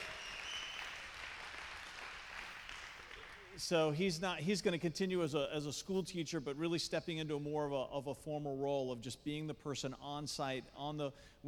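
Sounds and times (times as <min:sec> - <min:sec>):
audience whistling: 0:00.0 - 0:01.0
audience cheering: 0:00.0 - 0:02.1
audience applauding: 0:00.0 - 0:03.6
speech: 0:03.6 - 0:11.4.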